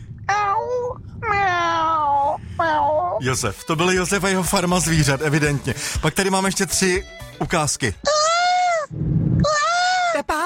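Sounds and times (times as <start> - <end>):
person imitating a cat meow: 0.3 - 3.2, 8.0 - 10.3
speech: 3.2 - 8.2.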